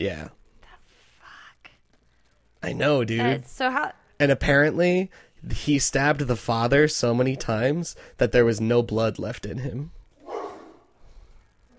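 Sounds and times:
speech: 0:00.0 - 0:00.4, 0:02.6 - 0:10.0
dog barking: 0:10.2 - 0:10.8.

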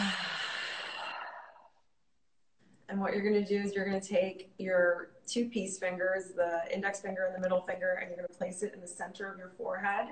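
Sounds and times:
cleansing breath in a seated breathing exercise: 0:00.0 - 0:01.8
speech: 0:02.9 - 0:10.0.

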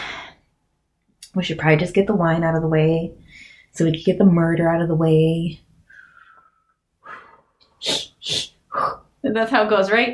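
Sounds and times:
person doing rhythmic forceful labor-style breathing: 0:00.0 - 0:00.6, 0:03.2 - 0:03.8, 0:05.8 - 0:09.1
speech: 0:01.4 - 0:05.6, 0:09.2 - 0:10.1.

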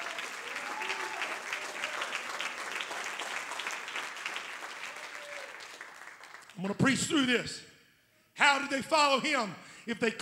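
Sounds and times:
audience clapping hands: 0:00.0 - 0:06.6
speech: 0:06.6 - 0:07.7, 0:08.5 - 0:10.2.

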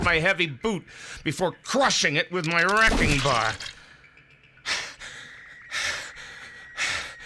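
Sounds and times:
speech: 0:00.1 - 0:03.8
softer wheezy breathing: 0:04.6 - 0:07.2.

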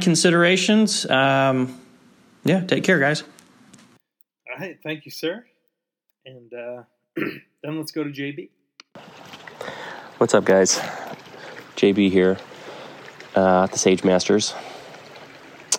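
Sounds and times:
speech: 0:00.0 - 0:01.8, 0:02.4 - 0:03.4, 0:04.6 - 0:05.5, 0:06.2 - 0:11.2, 0:11.8 - 0:12.5, 0:13.4 - 0:14.8
flowing creek water: 0:08.9 - 0:15.7.

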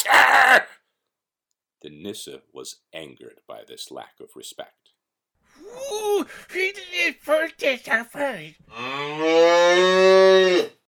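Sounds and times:
speech: 0:00.5 - 0:00.7, 0:01.8 - 0:04.9, 0:05.6 - 0:10.8
upset cow mooing: 0:08.7 - 0:10.8.

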